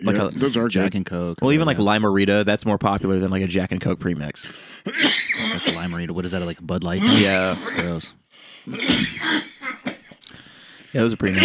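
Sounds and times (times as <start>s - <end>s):
harsh hacking cough from smoking: 0.0s - 1.0s, 4.8s - 6.0s, 7.0s - 8.1s, 8.7s - 10.2s, 11.2s - 11.4s
speech: 0.0s - 9.8s, 10.9s - 11.4s.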